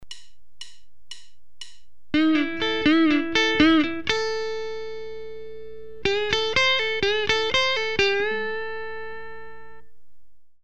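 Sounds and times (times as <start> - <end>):
guitar string bending: 2.1 - 9.9.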